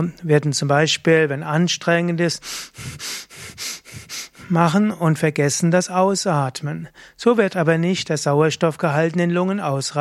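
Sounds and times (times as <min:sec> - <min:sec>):
speech: 0:00.0 - 0:09.9
quick sharp breaths drawn in through the nose: 0:02.4 - 0:04.6.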